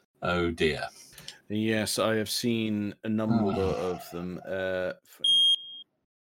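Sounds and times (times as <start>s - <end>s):
speech: 0.2s - 5.3s
high-pitched smoke alarm chirp: 5.2s - 5.9s.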